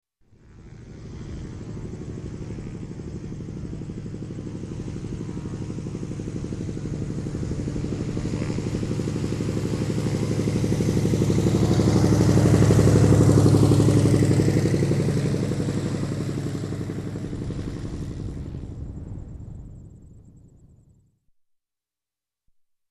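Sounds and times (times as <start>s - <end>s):
propeller aircraft taxiing past: 0.3s - 21.0s.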